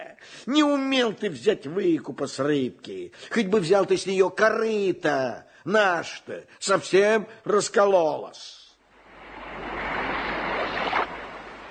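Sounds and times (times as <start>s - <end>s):
speech: 0.4s - 8.6s
slightly rough rolling sea waves: 8.8s - 11.6s.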